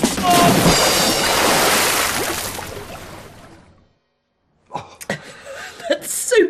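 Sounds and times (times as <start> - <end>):
person falling into water while stepping onto a boat: 0.1 - 3.7.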